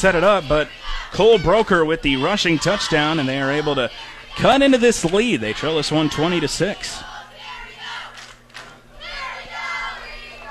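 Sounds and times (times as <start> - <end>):
speech: 0.0 - 7.1
large football crowd chanting led by cheerleaders: 0.0 - 8.2, 9.0 - 10.4.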